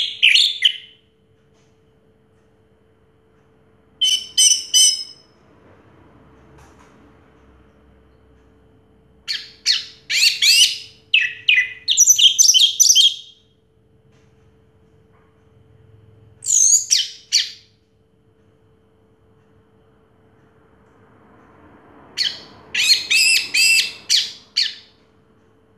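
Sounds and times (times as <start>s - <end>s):
orange-headed thrush song: 0.0s - 1.0s, 4.0s - 5.3s, 9.2s - 13.5s, 16.4s - 17.8s, 22.2s - 25.0s.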